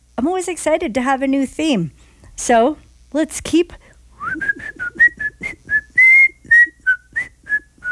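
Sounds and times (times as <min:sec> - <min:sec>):
speech: 0:00.2 - 0:05.1
person whistling a tune: 0:04.2 - 0:07.9.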